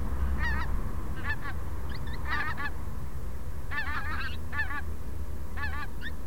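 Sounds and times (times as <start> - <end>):
Pink-footed goose Anser brachyrhynchus calling: 0.2 - 2.8, 3.7 - 4.9, 5.5 - 6.2.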